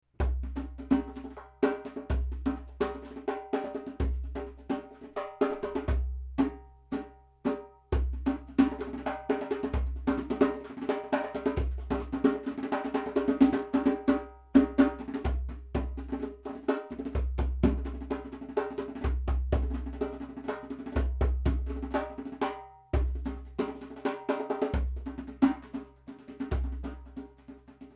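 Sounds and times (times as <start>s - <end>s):
tunable djembe with small glass pieces: 0.2s - 27.9s.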